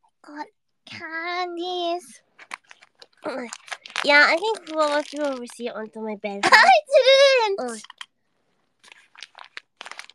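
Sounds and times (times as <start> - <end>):
speech: 0.2 - 2.3, 3.2 - 8.0
wrapping paper crinkling as a present is opened: 2.3 - 5.8, 7.8 - 10.1.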